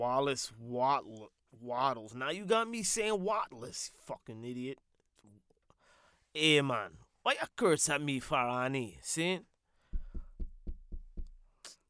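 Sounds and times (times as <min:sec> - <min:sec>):
speech: 0:00.0 - 0:04.9, 0:06.3 - 0:09.5
knocking on a door: 0:09.9 - 0:11.4.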